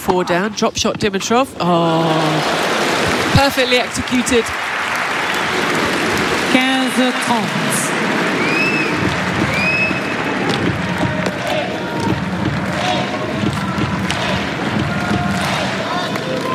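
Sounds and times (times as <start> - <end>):
speech: 0.1 - 4.7, 7.0 - 8.2
tennis crowd clapping and stomping a chant rhythm: 1.9 - 16.5
whistles: 8.4 - 10.3.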